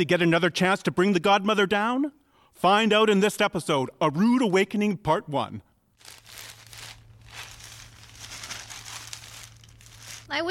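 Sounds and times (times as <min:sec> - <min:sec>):
speech: 0:00.0 - 0:06.5, 0:10.3 - 0:10.4
newspaper pages crinkling and rustling: 0:06.0 - 0:10.3
faint low hum: 0:06.0 - 0:10.4.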